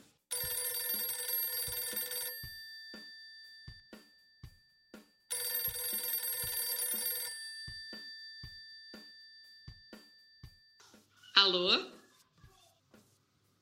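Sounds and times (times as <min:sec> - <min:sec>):
telephone ringing tone: 0:00.3 - 0:10.2
speech: 0:11.4 - 0:12.0.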